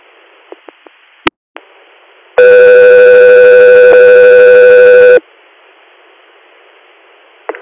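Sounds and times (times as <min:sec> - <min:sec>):
dispatch radio paging alert tones for an air unit's scene standby: 0:02.4 - 0:05.2.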